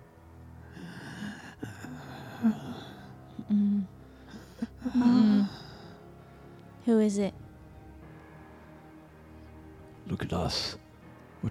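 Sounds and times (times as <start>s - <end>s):
labored gasping breathing with a groaning edge: 0.6s - 6.7s
speech: 2.4s - 2.6s, 6.9s - 7.4s, 10.4s - 10.8s.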